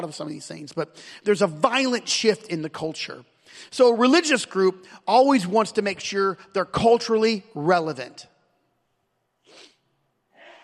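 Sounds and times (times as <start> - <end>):
speech: 0.0 - 8.3
person sneezing: 9.4 - 10.6.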